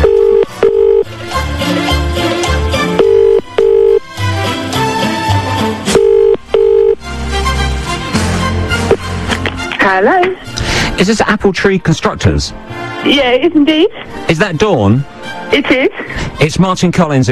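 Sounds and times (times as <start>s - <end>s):
phone line ringing in short tone bursts: 0.0s - 1.1s, 3.0s - 4.0s, 5.9s - 7.0s
busy loud music bed: 0.0s - 17.3s
speech: 11.0s - 17.3s.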